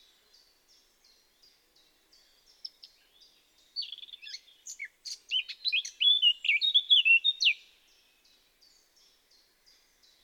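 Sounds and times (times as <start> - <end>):
Eurasian blackcap song with scratchy chatter and fluting whistles: 0.0 - 7.7.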